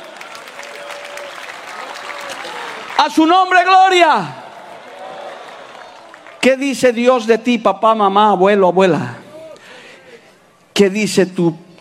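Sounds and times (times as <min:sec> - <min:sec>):
large audience applauding: 0:00.0 - 0:06.7
speech: 0:03.0 - 0:04.4, 0:06.4 - 0:09.2, 0:10.8 - 0:11.6.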